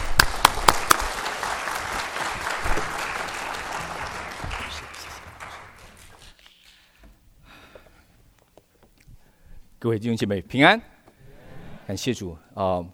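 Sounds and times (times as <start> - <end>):
roomful of people applauding guest speakers: 0.0 - 6.4
speech: 9.8 - 10.9, 11.9 - 12.9.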